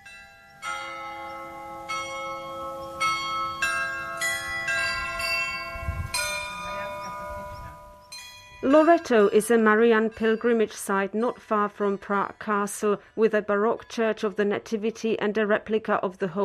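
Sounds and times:
church carillon bells chiming a slow melodic sequence: 0.0 - 13.0
speech: 8.6 - 16.4.

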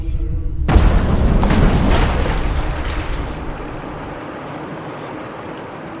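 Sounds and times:
low rumbling hum: 0.0 - 5.8
explosion erupting from water: 0.7 - 4.2
churning crashing spray and waves: 0.7 - 5.4.

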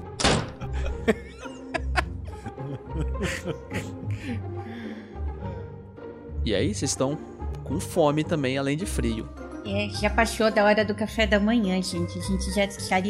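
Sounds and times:
door slamming shut: 0.0 - 0.8
soft laughter: 0.6 - 4.4
speech: 1.0 - 1.3, 6.5 - 13.0.

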